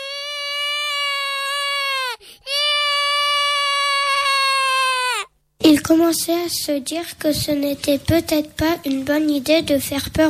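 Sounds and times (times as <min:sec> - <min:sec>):
character wailing like a baby: 0:00.0 - 0:05.4
speech: 0:05.7 - 0:10.2.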